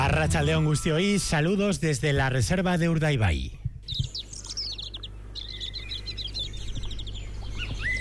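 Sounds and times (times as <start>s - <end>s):
speech: 0.1s - 3.6s
low steady rumble: 1.3s - 7.9s
blackbirds, canaries, goldfinches, chaffinches, greenfinches singing: 1.5s - 7.9s.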